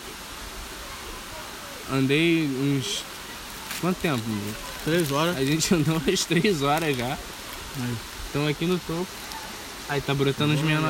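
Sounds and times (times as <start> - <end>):
waterfall rushing water: 0.0 - 10.8
speech: 1.9 - 3.1, 3.8 - 9.2, 9.9 - 10.8.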